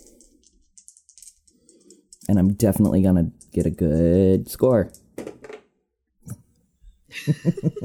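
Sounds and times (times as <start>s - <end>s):
two dice tumbling and clattering across a hard surface: 0.0s - 5.7s
speech: 2.3s - 5.0s, 7.2s - 7.8s
laughter: 7.1s - 7.8s.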